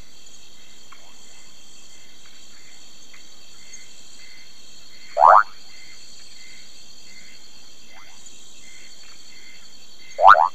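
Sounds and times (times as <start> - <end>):
steady background hiss: 0.0 - 10.5
Brown running frog Kassina fusca rising call: 5.2 - 5.5.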